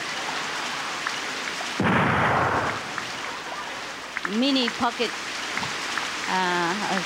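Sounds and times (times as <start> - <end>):
steady hiss of rain: 0.0 - 7.0
gunfire boom as a stand-in for thunder: 1.8 - 3.0
speech: 4.3 - 5.3, 6.3 - 7.0.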